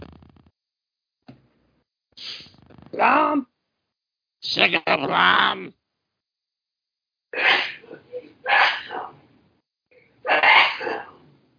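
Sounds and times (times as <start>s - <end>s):
speech: 2.2s - 3.5s, 4.4s - 5.8s
person sneezing loudly: 7.4s - 9.2s, 10.3s - 11.2s.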